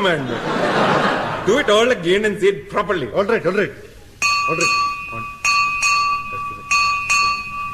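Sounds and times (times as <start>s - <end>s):
speech: 0.0s - 0.9s, 1.5s - 3.9s, 4.5s - 5.3s
laughter: 0.0s - 2.1s
single bright bell struck: 4.2s - 7.7s.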